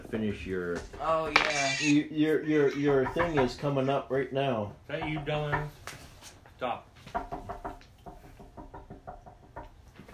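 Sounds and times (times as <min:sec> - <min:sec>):
speech: 0:00.1 - 0:05.8, 0:06.6 - 0:06.9
knocking on a door: 0:02.8 - 0:03.7, 0:04.9 - 0:05.8, 0:07.0 - 0:09.8.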